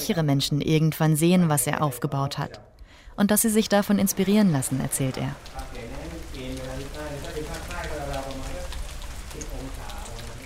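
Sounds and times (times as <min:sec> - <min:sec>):
speech: 0:00.0 - 0:05.7
steady rain pattering outside: 0:03.1 - 0:10.4.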